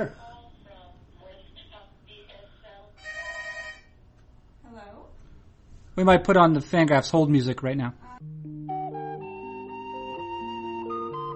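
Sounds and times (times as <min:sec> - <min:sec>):
speech: 0:00.0 - 0:00.2, 0:06.0 - 0:08.4
telephone ringing with chirping electronic tones: 0:03.0 - 0:04.0.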